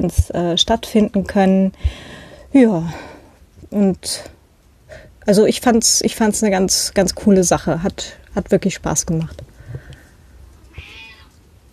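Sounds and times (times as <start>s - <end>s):
speech: 0.0s - 3.1s, 3.7s - 9.5s
cat meowing for food, drawn-out rising meow: 10.7s - 11.4s.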